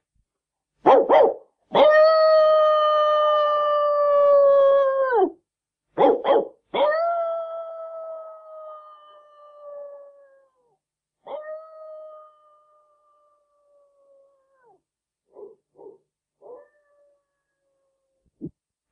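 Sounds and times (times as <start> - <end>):
dog barking and howling at night to raise an alarm: 0.9 - 5.4, 6.0 - 7.9, 14.7 - 16.9.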